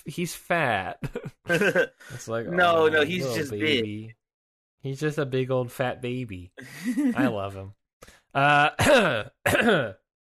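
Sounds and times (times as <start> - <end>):
speech: 0.0 - 4.2, 4.8 - 10.0
laughter: 1.0 - 3.6, 6.6 - 7.4
person coughing: 8.6 - 10.0.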